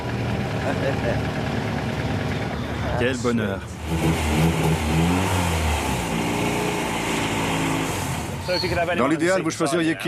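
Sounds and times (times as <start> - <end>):
Cosworth car engine starting and idling: 0.0 - 10.0
speech: 0.7 - 1.5, 3.0 - 5.6, 8.5 - 10.0.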